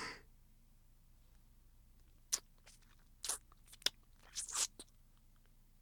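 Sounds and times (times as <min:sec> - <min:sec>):
sharp crisp crunchy bites and smacks: 0:02.3 - 0:04.9
wet nibbling and eating mouth sounds at an ear: 0:02.3 - 0:05.0.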